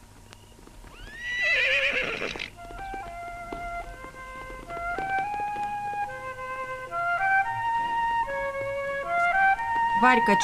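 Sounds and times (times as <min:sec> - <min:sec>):
galloping hoofbeats of a black horse and a white horse: 0:00.0 - 0:10.4
horse neighing: 0:00.9 - 0:03.1.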